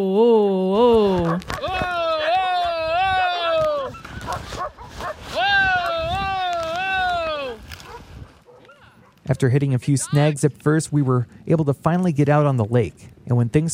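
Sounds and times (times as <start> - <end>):
speech: 0.0 - 0.4, 9.3 - 13.7
scuffling: 0.8 - 9.3
sled dogs barking and yipping: 3.8 - 5.3, 7.8 - 9.4.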